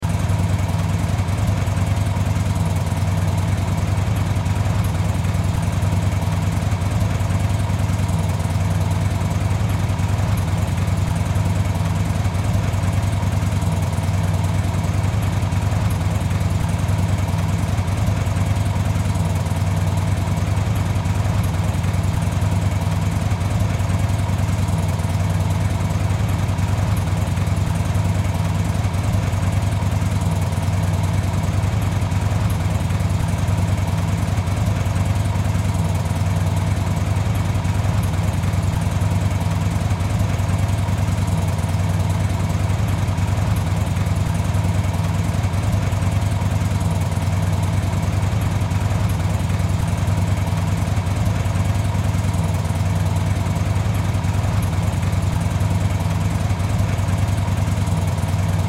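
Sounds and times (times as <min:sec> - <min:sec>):
motorcycle idling: 0:00.0 - 0:58.6.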